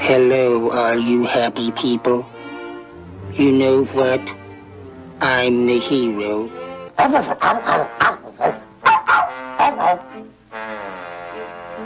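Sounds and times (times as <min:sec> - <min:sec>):
speech: 0:00.1 - 0:02.4, 0:03.4 - 0:04.4, 0:05.2 - 0:08.5
dog barking and yipping: 0:07.0 - 0:10.1.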